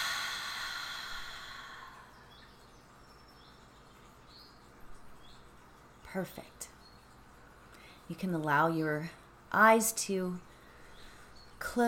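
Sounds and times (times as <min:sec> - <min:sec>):
deep breath exhaled during a guided breathing exercise: 0:00.0 - 0:02.1
speech: 0:06.1 - 0:06.8, 0:08.1 - 0:10.5, 0:11.7 - 0:11.8.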